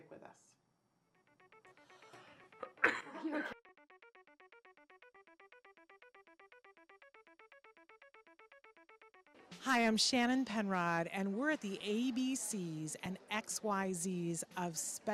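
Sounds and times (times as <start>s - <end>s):
steady repetitive electronic melody: 1.2s - 9.6s
person coughing: 2.6s - 3.6s
speech: 3.3s - 3.6s, 9.7s - 15.1s.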